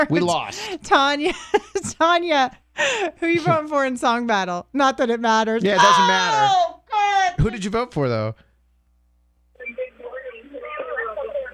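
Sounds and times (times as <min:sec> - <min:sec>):
speech: 0:00.0 - 0:08.4
radio playing in background through phone line: 0:09.6 - 0:11.5.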